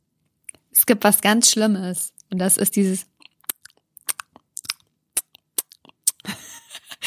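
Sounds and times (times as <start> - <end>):
speech: 0.9 - 3.2
wet smacking and chewing mouth noises: 3.2 - 6.3.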